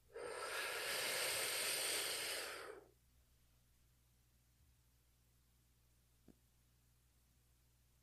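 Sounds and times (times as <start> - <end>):
long deep breath in and out: 0.0 - 2.9.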